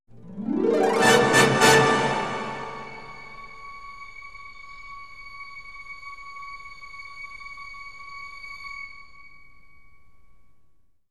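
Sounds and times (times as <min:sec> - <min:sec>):
production music brass stabs: 0:00.6 - 0:03.5.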